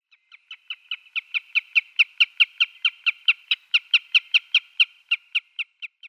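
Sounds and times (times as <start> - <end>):
spotted redshank Tringa erythropus calling: 0.2 - 6.0.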